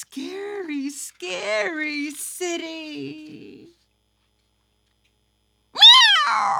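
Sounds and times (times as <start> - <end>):
speech: 0.0 - 3.8, 6.2 - 6.5
cat meowing: 5.8 - 6.5.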